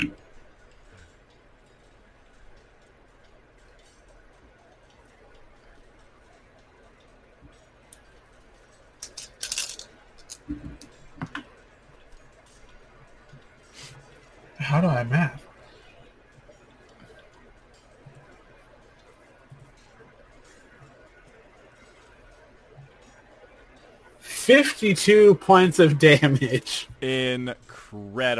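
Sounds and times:
many dice rolled at once clattering on a hard surface: 0:09.0 - 0:10.4
speech: 0:14.7 - 0:15.4, 0:24.5 - 0:28.3.

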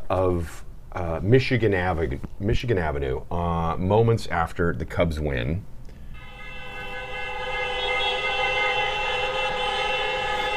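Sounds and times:
speech: 0:00.1 - 0:05.7
many car horns honking on a city street after a baseball win: 0:06.1 - 0:10.5.

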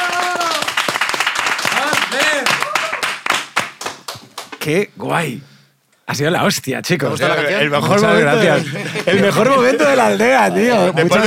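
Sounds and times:
excited voices whooping and cheering: 0:00.0 - 0:00.8, 0:01.8 - 0:03.2
small group clapping hands: 0:00.0 - 0:04.7
speech: 0:04.6 - 0:05.5, 0:06.1 - 0:11.2
laughter: 0:08.0 - 0:11.2.

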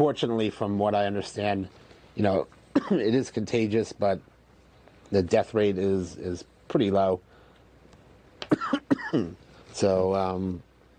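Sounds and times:
speech: 0:00.0 - 0:04.3, 0:05.1 - 0:07.3, 0:08.6 - 0:10.7
short dry coughs: 0:02.7 - 0:03.1, 0:08.4 - 0:09.4.

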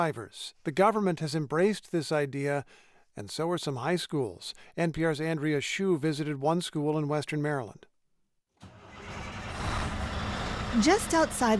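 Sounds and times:
speech: 0:00.0 - 0:07.9, 0:10.8 - 0:11.5
Volvo truck engine starting and rumbling: 0:08.6 - 0:11.5.

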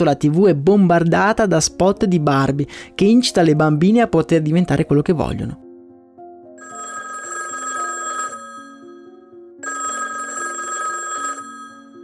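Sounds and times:
speech: 0:00.0 - 0:05.6
telephone ringing: 0:06.6 - 0:12.0.

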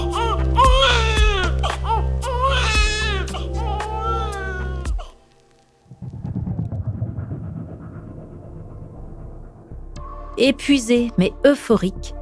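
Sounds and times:
newborn baby boy crying: 0:00.0 - 0:05.3
speech: 0:10.4 - 0:12.1.

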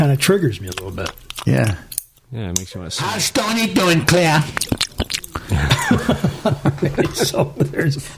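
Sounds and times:
person imitating loud wet open-mouth gum chewing: 0:00.0 - 0:05.8
speech: 0:00.0 - 0:08.1
laughter: 0:05.3 - 0:08.1.

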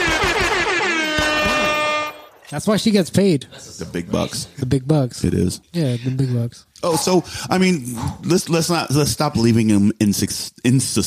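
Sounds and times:
sustained air horn blast: 0:00.0 - 0:02.4
speech: 0:02.5 - 0:11.0.

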